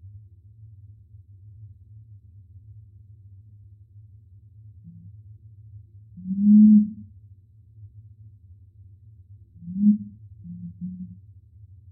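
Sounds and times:
low background drone: 1.1s - 11.9s
razor-billed curassow booming hum: 6.1s - 7.1s, 9.6s - 11.2s.

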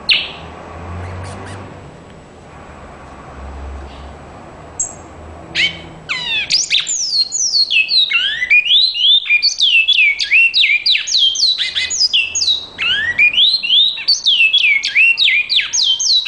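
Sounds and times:
great-billed seed finch long loud whistled song: 0.1s - 0.4s, 5.6s - 16.2s.

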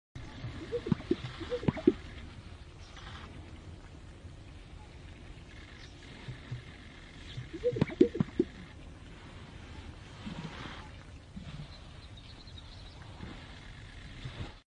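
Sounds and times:
pheasant-tailed grouse calling: 0.5s - 2.0s, 7.3s - 8.6s.

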